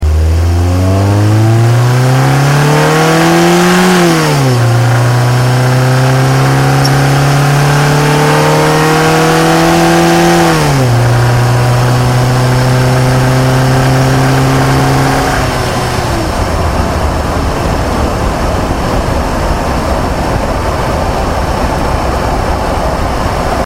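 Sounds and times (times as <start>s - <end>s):
Alza accelerating outside: 0.0s - 23.6s.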